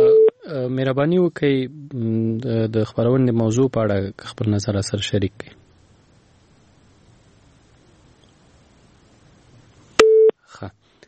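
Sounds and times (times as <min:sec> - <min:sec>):
low-pitched busy tone beep after a phone call is cut off: 0:00.0 - 0:00.4
speech: 0:00.8 - 0:05.6, 0:10.6 - 0:10.8
phone line click as a call is cut off: 0:10.0 - 0:10.3.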